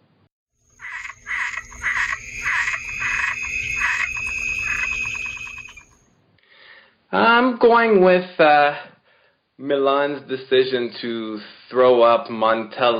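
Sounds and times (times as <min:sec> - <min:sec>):
frog croaking: 0:00.7 - 0:05.9
steady high trill: 0:00.8 - 0:06.0
speech: 0:07.1 - 0:08.9, 0:09.6 - 0:12.9.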